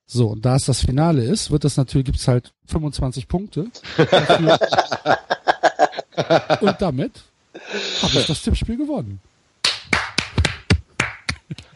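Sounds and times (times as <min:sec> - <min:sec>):
speech: 0:00.1 - 0:05.4, 0:06.2 - 0:09.3
laughter: 0:03.8 - 0:06.8
single person clapping hands in Frankfurt: 0:09.6 - 0:11.7.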